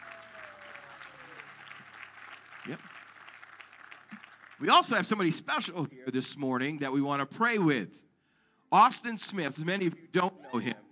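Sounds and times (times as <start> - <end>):
church congregation applauding guests with hand claps: 0.0 - 5.3
speech: 2.6 - 3.0, 4.6 - 8.0, 8.7 - 10.8.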